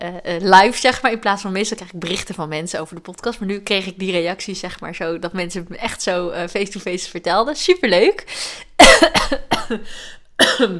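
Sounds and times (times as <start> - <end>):
speech: 0.0 - 10.7
person coughing after choking while talking fast: 8.8 - 10.7.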